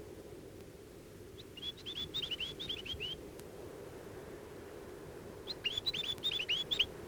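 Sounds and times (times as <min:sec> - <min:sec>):
Chatham Island tomtit giving thin sliding whistled notes: 0:01.5 - 0:03.2, 0:05.5 - 0:06.9.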